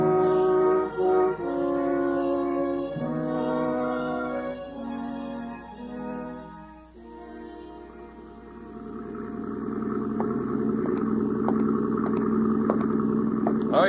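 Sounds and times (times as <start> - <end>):
motor launch boat engine running at night: 0.0 - 13.8
faint ticking clicks: 8.9 - 13.8.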